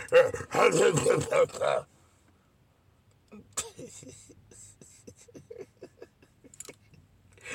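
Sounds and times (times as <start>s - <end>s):
crowd of people barking like dogs: 0.0s - 1.8s.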